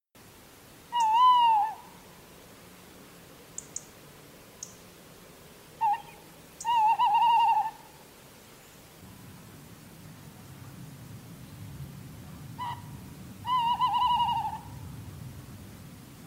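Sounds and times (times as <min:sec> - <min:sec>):
male tawny owl singing: 0:00.9 - 0:02.0, 0:05.8 - 0:08.0, 0:12.6 - 0:14.8.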